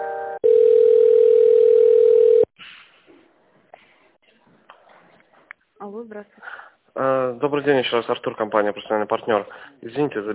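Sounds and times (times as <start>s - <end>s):
telephone line tones while a call is transferred: 0.3s - 2.5s
speech: 7.4s - 10.3s.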